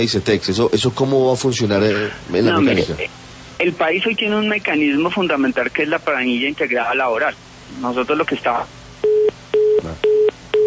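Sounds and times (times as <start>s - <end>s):
speech: 0.0s - 8.8s
telephone busy tone after a dropped call: 9.0s - 10.6s.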